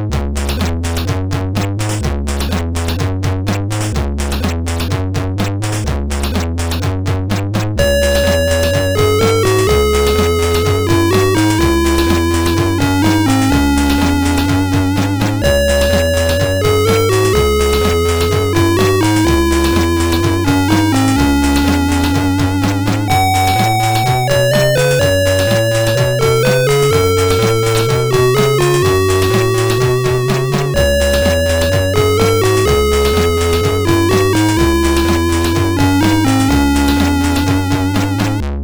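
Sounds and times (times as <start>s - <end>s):
tune on MOS6581R4 sound chip: 0.2s - 38.4s.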